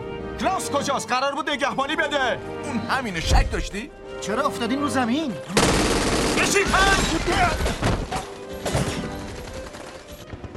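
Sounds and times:
speech: 0.4 - 7.9
rapid gunfire in uneven bursts: 5.6 - 7.2, 9.1 - 10.5.

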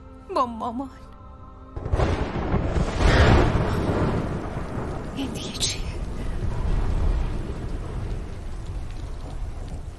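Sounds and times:
speech: 0.3 - 1.1, 5.2 - 5.9
deep rumbling: 1.8 - 9.9
steady rain pouring down: 2.0 - 9.9.

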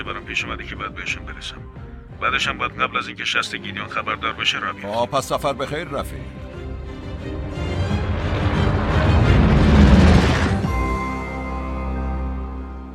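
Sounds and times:
speech: 0.0 - 7.4
sustained humming drone: 6.2 - 12.9
base exploding: 7.6 - 10.8.

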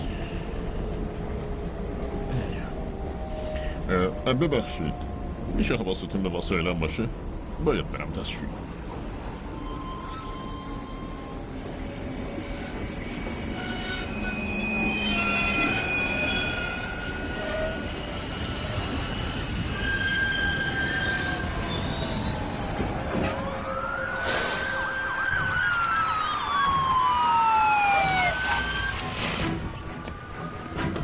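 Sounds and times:
passenger train rumbling along the rails: 0.0 - 31.0
speech: 3.9 - 8.8
train wheels screeching in high squeals: 9.0 - 23.4.

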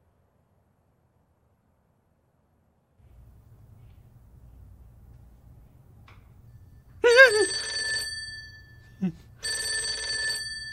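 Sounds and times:
telephone ringing: 6.9 - 10.7.

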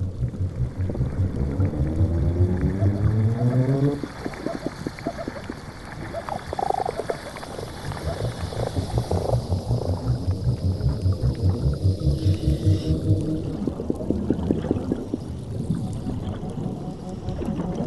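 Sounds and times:
underwater fish rhythmic knocking sounds: 0.0 - 3.6, 7.9 - 13.8
underwater fish pulsed croaks: 0.0 - 17.8.

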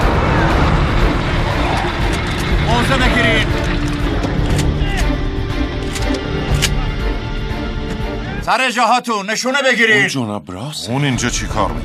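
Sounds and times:
approaching cars with loud steady engine rumble: 0.0 - 4.9
broadband road noise of approaching cars: 0.0 - 8.3
speech: 8.5 - 11.8.

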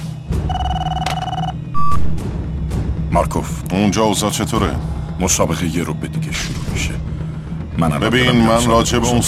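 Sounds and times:
telephone ringing with sharp electronic bell tones: 0.5 - 2.0
brief higher beep: 0.5 - 2.2
speech: 3.1 - 7.1, 7.8 - 9.2.

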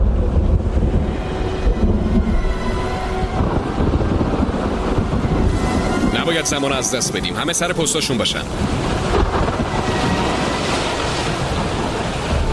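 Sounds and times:
howling wind around a ship at sea: 0.0 - 12.5
surf crashing around a ship at sea: 0.0 - 12.5
speech: 6.3 - 9.0.

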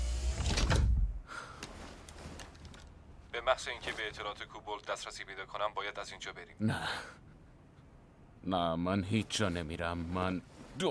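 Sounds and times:
door being closed: 0.1 - 1.1
speech: 3.5 - 7.2, 8.4 - 10.9.

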